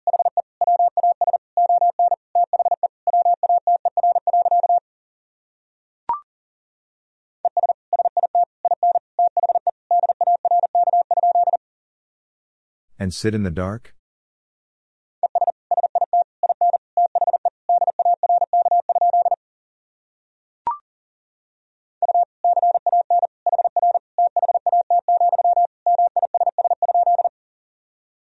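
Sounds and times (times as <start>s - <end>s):
rapid mid-pitched Morse code beeps at 40 words per minute: 0.1s - 4.8s, 7.5s - 11.6s, 15.2s - 19.4s, 22.0s - 27.3s
speech: 13.0s - 14.0s.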